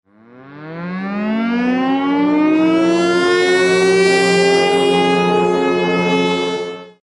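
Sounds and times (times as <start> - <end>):
civil defense air raid siren alarm: 0.1 - 7.0.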